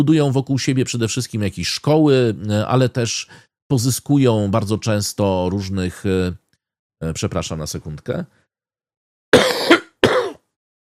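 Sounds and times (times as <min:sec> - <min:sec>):
speech: 0:00.0 - 0:06.4, 0:07.0 - 0:08.4
harsh throat clearing and coughing: 0:09.4 - 0:10.6.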